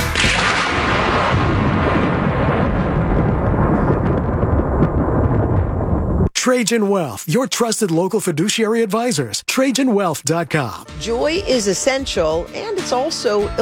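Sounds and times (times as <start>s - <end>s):
thunder crash and rumble: 0.1s - 6.3s
speech: 6.5s - 13.6s.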